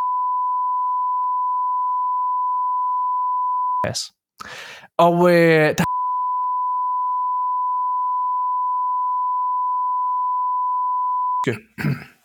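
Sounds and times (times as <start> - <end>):
long steady high-pitched censor bleep: 0.0 - 3.8, 5.9 - 11.4
speech: 3.8 - 5.9, 11.4 - 12.1.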